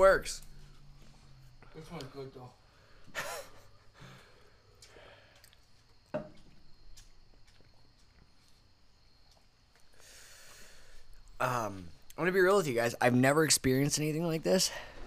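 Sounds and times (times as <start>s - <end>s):
speech: 0.0s - 0.5s, 1.8s - 3.5s, 11.4s - 14.9s
heavy breathing after eating hot food: 2.6s - 5.6s, 9.9s - 11.2s.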